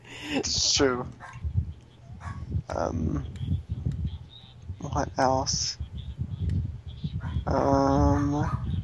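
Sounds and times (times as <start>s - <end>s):
speech: 0.3s - 1.4s, 2.7s - 3.6s, 5.0s - 5.8s, 7.4s - 8.7s
tiny dog barking high-pitched: 1.2s - 1.5s, 2.1s - 2.4s, 7.2s - 7.5s, 8.1s - 8.8s.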